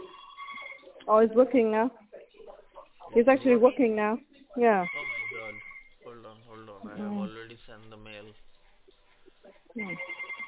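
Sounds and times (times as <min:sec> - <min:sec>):
telephone ringing: 0:00.0 - 0:01.0, 0:09.8 - 0:10.4
faint voices: 0:00.0 - 0:10.4
speech: 0:01.1 - 0:02.0, 0:03.1 - 0:05.0, 0:09.8 - 0:10.2.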